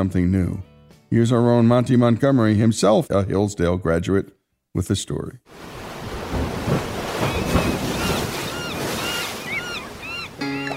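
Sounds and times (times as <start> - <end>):
speech: 0.0 - 5.8
ocean surf with waves washing in: 5.5 - 10.7
gusting wind: 5.6 - 10.4
faint high calls: 7.2 - 10.7.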